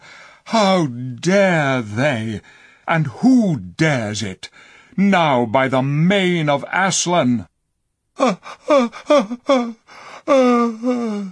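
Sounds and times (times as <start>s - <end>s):
speech: 0.5s - 7.5s, 8.2s - 11.2s
person gasping in pain: 8.2s - 11.2s
person moaning: 8.2s - 11.2s.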